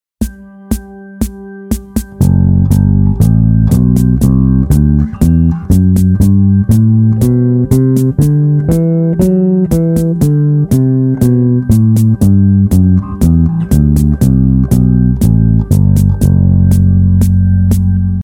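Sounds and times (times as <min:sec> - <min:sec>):
bass playing Locrian mode: 0:02.1 - 0:18.2.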